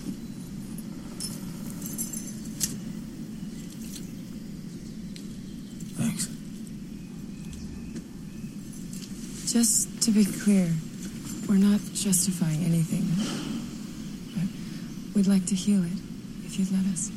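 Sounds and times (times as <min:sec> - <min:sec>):
steady low rumble: 0:00.0 - 0:17.1
set of truck keys jingling as handed over: 0:00.8 - 0:02.8
speech: 0:06.2 - 0:06.4, 0:09.6 - 0:10.9, 0:11.5 - 0:13.7, 0:15.2 - 0:17.1.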